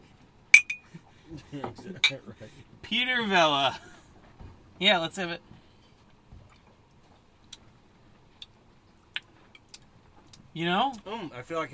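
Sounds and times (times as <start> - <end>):
wine glasses clinking in a toast: 0.5 - 0.9
speech: 1.3 - 4.0, 4.8 - 5.6, 10.6 - 11.7.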